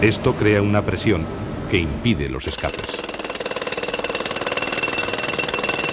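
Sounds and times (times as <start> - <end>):
speech: 0.0 - 3.1
rotary drill boring into ground: 2.5 - 5.9.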